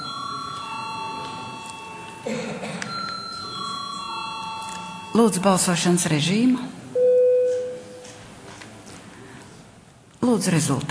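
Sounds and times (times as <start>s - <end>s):
electric bell ringing to call deputies to vote on a bill: 0.0s - 2.2s, 2.9s - 5.8s
low room murmur: 0.0s - 10.8s
speech: 5.2s - 6.8s, 10.4s - 10.8s.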